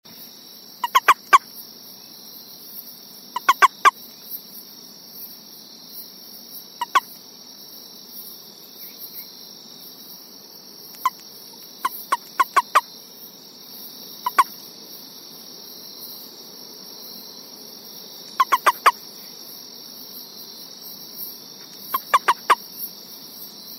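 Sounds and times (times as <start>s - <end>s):
central Formosan toad calling: 0.8s - 1.5s, 3.3s - 4.0s, 6.8s - 7.1s, 10.9s - 12.9s, 14.2s - 14.6s, 18.3s - 19.0s, 21.7s - 22.6s.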